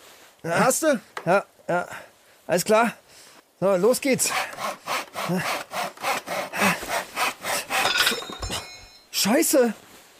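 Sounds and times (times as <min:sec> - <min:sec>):
speech: 0:00.4 - 0:05.6, 0:09.2 - 0:09.9
hand saw cutting through wood: 0:04.2 - 0:08.2.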